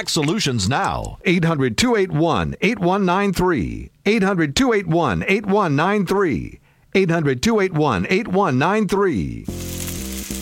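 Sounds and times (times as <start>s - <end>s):
speech: 0.0s - 9.7s
steak searing in its juices on a pellet grill: 9.5s - 10.4s.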